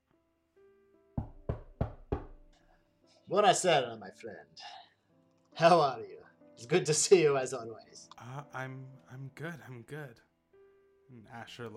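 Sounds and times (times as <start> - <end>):
firm knocks on a wooden door: 1.2 - 2.6
speech: 3.3 - 4.8, 5.6 - 10.3, 11.1 - 11.7.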